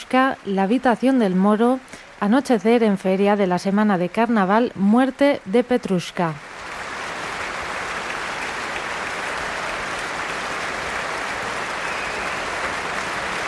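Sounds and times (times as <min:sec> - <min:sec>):
speech: 0:00.1 - 0:06.5
large concert hall audience applause: 0:06.4 - 0:13.4.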